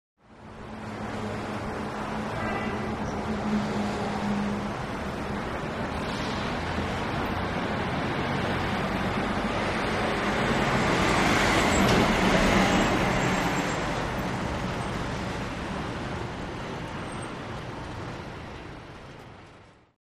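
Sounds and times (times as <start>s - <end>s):
large truck passing by: 0.4s - 19.6s.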